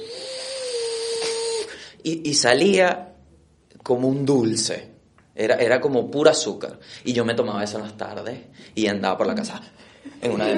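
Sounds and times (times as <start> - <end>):
voice imitating a blender mixing fruit compote: 0.0 - 1.7
speech: 2.0 - 3.1, 3.8 - 10.5.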